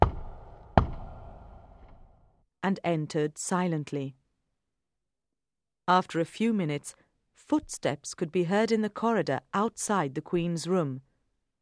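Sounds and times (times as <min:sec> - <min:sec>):
knocking on the door of a queen's room: 0:00.0 - 0:01.6
speech: 0:02.7 - 0:04.2, 0:05.9 - 0:11.1.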